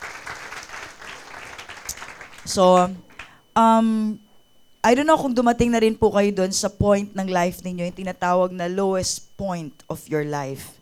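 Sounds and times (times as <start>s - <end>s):
roomful of people applauding: 0.0s - 3.4s
speech: 2.4s - 4.2s, 4.8s - 10.8s.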